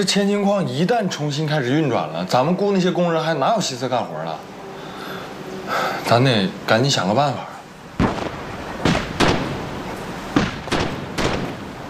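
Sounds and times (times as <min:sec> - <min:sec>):
speech: 0:00.0 - 0:04.5, 0:05.7 - 0:07.5
steady hiss: 0:00.0 - 0:11.8
moderately dull blasting booms: 0:08.0 - 0:11.8.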